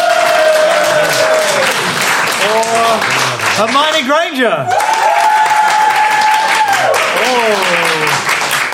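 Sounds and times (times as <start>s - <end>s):
people whooping: 0.0s - 2.0s, 4.6s - 8.2s
audience applause: 0.0s - 8.7s
speech: 3.6s - 5.0s, 7.2s - 8.3s.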